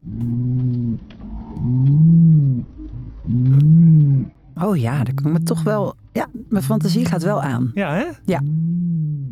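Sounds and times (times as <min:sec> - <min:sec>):
slowed and pitched-down pigeon cooing: 0:00.0 - 0:04.4
speech: 0:04.6 - 0:08.7.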